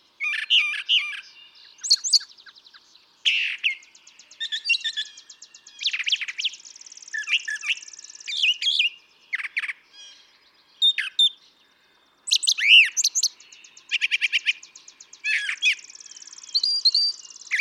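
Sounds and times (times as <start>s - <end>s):
male brown thrasher song: 0.0s - 17.5s.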